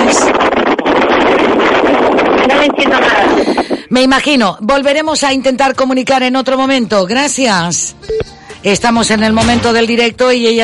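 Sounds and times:
wind buffeting a microphone over a phone connection: 0:00.0 - 0:05.6
speech: 0:03.9 - 0:10.6.

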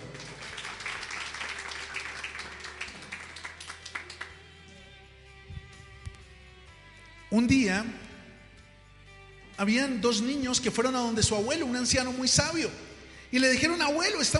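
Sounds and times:
crowd applauding: 0:00.0 - 0:04.7
speech: 0:07.3 - 0:08.0, 0:09.6 - 0:14.3.

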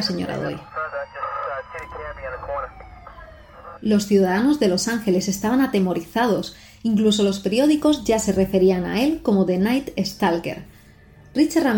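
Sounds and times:
speech: 0:00.0 - 0:01.2, 0:01.8 - 0:02.9, 0:03.8 - 0:10.7, 0:11.4 - 0:11.7
police patrol car siren wailing: 0:00.0 - 0:05.3
low traffic rumble: 0:00.0 - 0:10.2.

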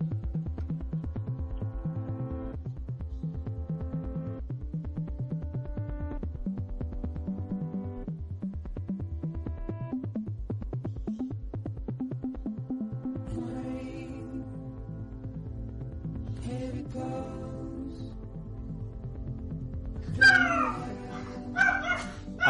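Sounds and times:
song from a video game: 0:00.0 - 0:22.4
dog barking sharply: 0:20.2 - 0:22.4.

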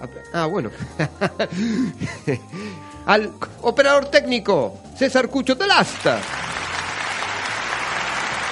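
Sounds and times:
speech: 0:00.0 - 0:06.5
laughter: 0:00.8 - 0:02.4
audience applause: 0:05.8 - 0:08.5.

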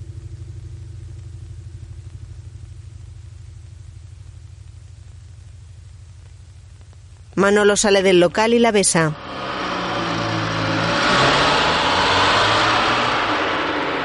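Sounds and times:
speech: 0:07.4 - 0:09.4
street traffic with cars passing by a sidewalk: 0:09.1 - 0:14.0.

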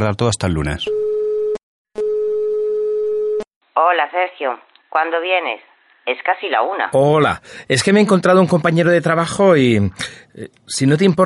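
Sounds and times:
speech: 0:00.0 - 0:01.1, 0:03.8 - 0:11.2
telephone ringing tone while placing a call: 0:00.9 - 0:03.5.

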